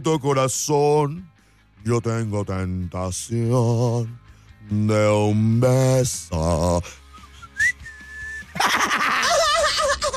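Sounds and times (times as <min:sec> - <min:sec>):
speech: 0:00.0 - 0:07.0
person whistling a tune: 0:06.8 - 0:08.6
laughter: 0:08.5 - 0:10.1.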